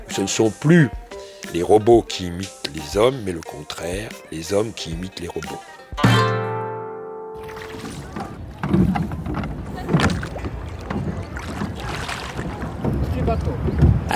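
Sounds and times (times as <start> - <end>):
speech: 0.1 - 6.3
oars of a small rowed boat splashing in water: 7.4 - 13.9.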